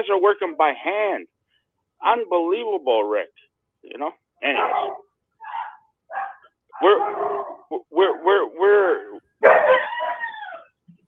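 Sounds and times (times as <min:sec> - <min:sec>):
speech: 0:00.0 - 0:01.4, 0:02.0 - 0:05.0, 0:06.8 - 0:10.2
dog barking and yelping: 0:04.4 - 0:10.9.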